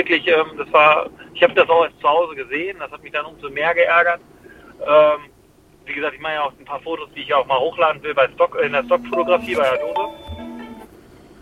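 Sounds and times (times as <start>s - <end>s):
speech: 0.0s - 5.3s, 5.9s - 10.2s
mobile phone electronic notification tone: 8.7s - 10.9s.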